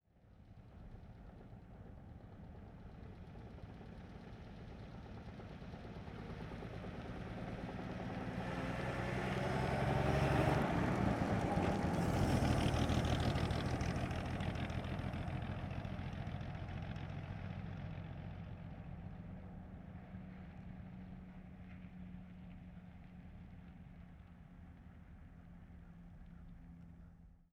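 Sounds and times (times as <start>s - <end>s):
1937 Plymouth driving by with gear shifts: 7.5s - 18.0s.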